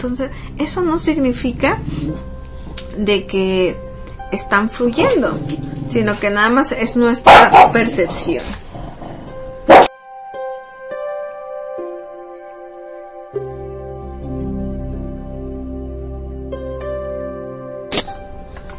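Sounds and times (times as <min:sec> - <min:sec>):
speech: 0:00.0 - 0:02.4, 0:03.0 - 0:08.6
soft steady music: 0:00.0 - 0:18.7
small dog barking at birds through a window: 0:07.3 - 0:07.9, 0:09.7 - 0:09.9.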